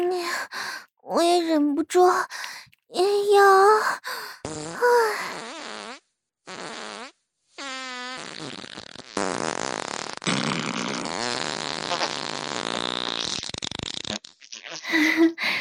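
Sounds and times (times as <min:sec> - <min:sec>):
speech: 0:00.2 - 0:05.6
loud farts: 0:04.4 - 0:15.0.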